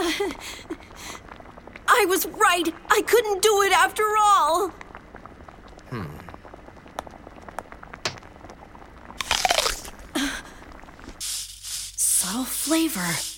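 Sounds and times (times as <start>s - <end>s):
speech: 0.2s - 0.8s, 2.0s - 4.8s, 5.9s - 6.2s, 12.7s - 13.3s
crunch of teeth biting into an apple: 9.2s - 10.0s.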